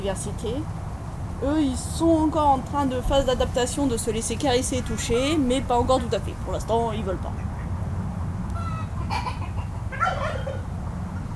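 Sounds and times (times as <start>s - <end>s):
speech: 0.0s - 0.8s, 1.4s - 7.5s
hen and rooster clucking: 7.0s - 11.3s.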